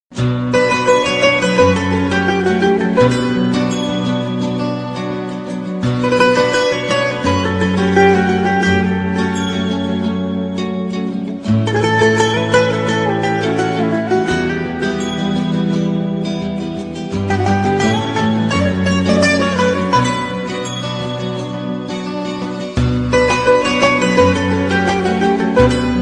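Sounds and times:
cool guitar ringtone: 0.2 - 26.0.

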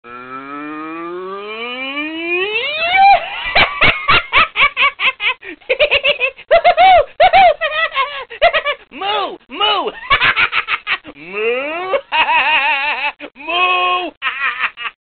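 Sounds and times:
funny laugh background music tone: 2.6 - 8.8, 9.9 - 13.6, 14.2 - 15.0.

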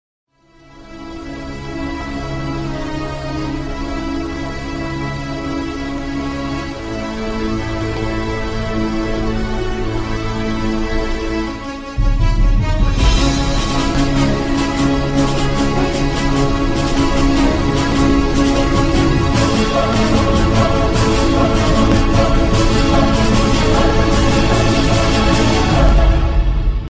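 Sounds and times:
violin with orchestra: 2.8 - 26.5.

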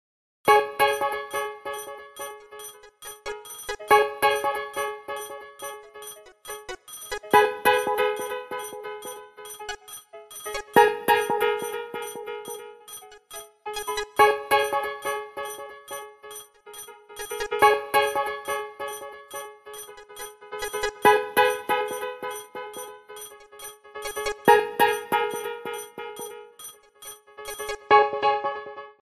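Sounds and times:
club-style Nokia 3120 mobile phone ringtone: 0.5 - 27.9.

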